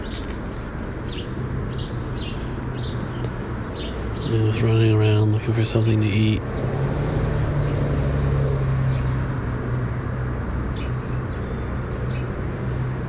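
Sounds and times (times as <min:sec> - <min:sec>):
bird calling with short high chirps: 0:00.0 - 0:06.7, 0:10.6 - 0:12.9
loud rumble: 0:00.0 - 0:13.0
speech: 0:04.3 - 0:06.8.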